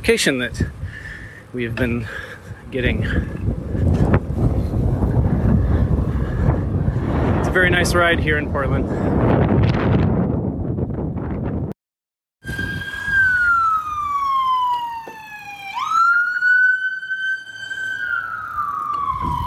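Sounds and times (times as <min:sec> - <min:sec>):
speech: 0:00.0 - 0:03.4, 0:07.6 - 0:09.8
wind rumble: 0:00.0 - 0:11.8, 0:12.4 - 0:19.4
ambulance siren wailing during a bike ride in Portland: 0:12.4 - 0:19.4.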